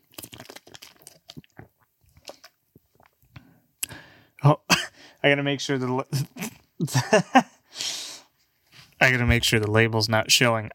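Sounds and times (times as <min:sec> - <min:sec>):
plastic bottle crinkling and being squeezed: 0:00.0 - 0:03.3
person gulping water from a plastic bottle: 0:00.0 - 0:04.1
speech: 0:04.4 - 0:04.6, 0:05.2 - 0:07.5, 0:09.0 - 0:10.7.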